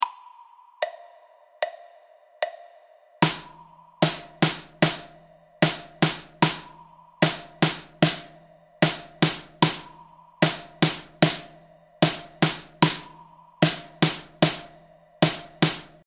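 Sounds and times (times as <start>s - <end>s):
drum stroke: 3.2s - 16.0s.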